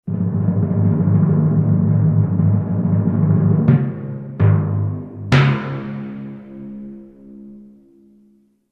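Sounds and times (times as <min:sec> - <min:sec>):
timpani: 0:00.0 - 0:08.5.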